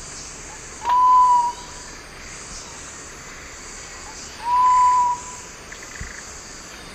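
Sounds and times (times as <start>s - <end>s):
insect buzz: 0.0s - 6.9s
Sapphire quail-dove Geotrygon saphirina hooted whistle song in eastern lowlands of South America: 0.8s - 1.8s, 4.4s - 5.4s.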